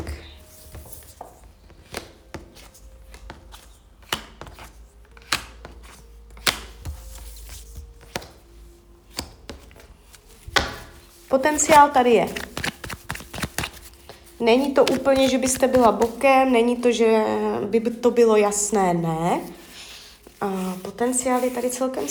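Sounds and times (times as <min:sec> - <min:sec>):
playing cards being shuffled: 0:00.0 - 0:16.8, 0:19.4 - 0:22.0
speech: 0:11.4 - 0:12.4, 0:14.4 - 0:19.6, 0:20.4 - 0:22.0.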